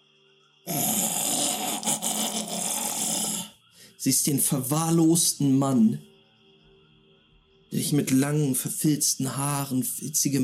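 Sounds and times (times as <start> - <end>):
gaunt unkempt man breathing with raspy gurgling rattle in a bush at a lakeside camp: 0.7 - 4.0
speech: 4.0 - 6.1, 7.8 - 10.4.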